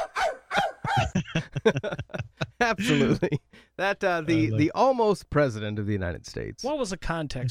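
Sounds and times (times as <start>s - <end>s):
person imitating a dog barking: 0.0s - 1.2s, 2.8s - 3.2s
laughter: 0.6s - 3.5s
speech: 1.0s - 7.5s.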